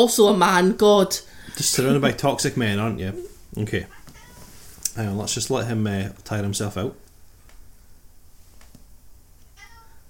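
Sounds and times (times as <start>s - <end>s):
speech: 0.0s - 4.0s, 5.0s - 7.0s
low hum: 0.0s - 10.0s
cat meowing: 3.1s - 4.6s, 9.5s - 10.0s.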